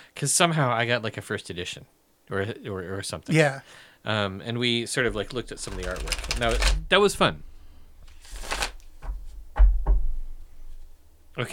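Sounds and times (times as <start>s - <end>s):
speech: 0.2s - 7.5s, 11.4s - 11.5s
tarot cards tapped and squared together: 5.1s - 6.9s, 8.0s - 10.1s
deck of tarot cards being shuffled: 5.1s - 9.6s.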